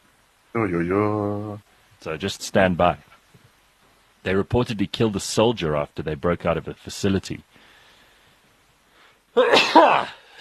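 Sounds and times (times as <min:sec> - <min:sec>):
speech: 0:00.6 - 0:03.1, 0:04.2 - 0:07.5, 0:09.4 - 0:10.2
single loud sneeze: 0:09.4 - 0:10.3.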